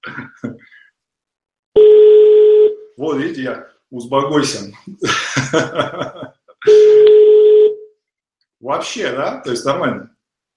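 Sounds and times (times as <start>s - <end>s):
speech: 0.0s - 0.8s, 3.0s - 7.0s, 8.6s - 10.1s
steady fairly loud dial tone hum: 1.8s - 2.8s, 6.7s - 7.8s
laughter: 5.0s - 6.5s.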